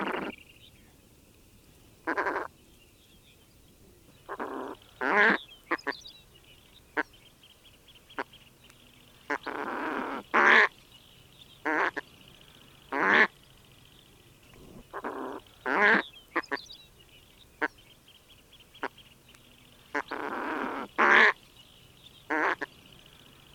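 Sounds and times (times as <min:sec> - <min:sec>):
bird giving harsh nasal squawks: 0:00.0 - 0:00.4, 0:02.1 - 0:02.5, 0:04.2 - 0:06.1, 0:09.3 - 0:10.7, 0:11.6 - 0:12.1, 0:14.6 - 0:16.7, 0:19.9 - 0:21.4, 0:22.3 - 0:22.8.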